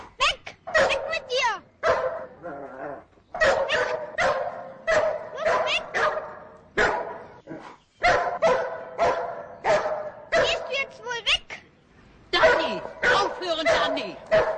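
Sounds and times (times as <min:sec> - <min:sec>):
people talking: 0:00.2 - 0:01.6, 0:10.4 - 0:11.6, 0:12.4 - 0:14.2
dog barking at a man: 0:00.7 - 0:02.4, 0:03.4 - 0:07.3, 0:08.0 - 0:10.8, 0:12.4 - 0:14.5.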